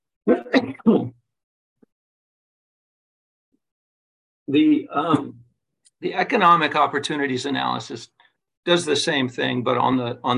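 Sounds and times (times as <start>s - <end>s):
speech: 0.2s - 1.2s, 4.5s - 5.4s, 6.0s - 10.3s
short coughs: 0.3s - 1.1s
throat clearing: 0.3s - 1.1s.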